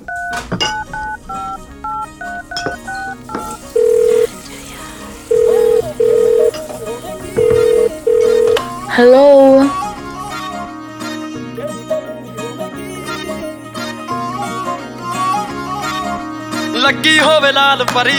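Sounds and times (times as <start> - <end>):
telephone keypad dialing tones: 0.0 - 4.3, 5.3 - 6.7, 7.3 - 8.8
song: 0.0 - 15.8
speech: 9.0 - 9.8, 17.0 - 18.1.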